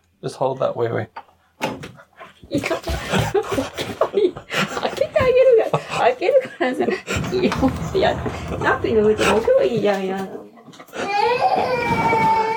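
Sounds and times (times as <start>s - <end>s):
speech: 0.2s - 11.8s
laughter: 2.8s - 9.6s
jumbled voices: 4.6s - 10.4s
child crying: 11.0s - 12.5s.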